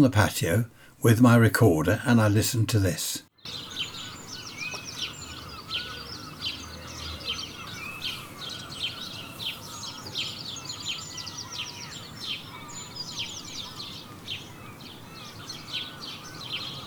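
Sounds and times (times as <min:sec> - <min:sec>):
speech: 0:00.0 - 0:03.7
garden dawn chorus of birds singing and chirping: 0:03.4 - 0:16.8.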